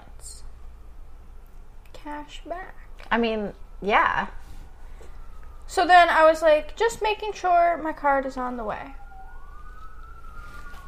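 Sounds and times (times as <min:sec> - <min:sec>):
low rumble of traffic: 0:00.0 - 0:10.8
speech: 0:02.0 - 0:04.4, 0:05.7 - 0:09.0
emergency vehicle siren wailing: 0:03.8 - 0:10.8.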